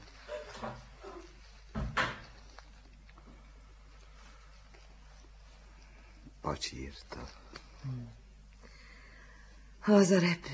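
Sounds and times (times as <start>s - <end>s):
soft shuffling movements: 0.0s - 7.8s
bedroom door swinging shut with a low thud: 1.7s - 2.4s
speech: 6.5s - 8.2s, 9.8s - 10.5s.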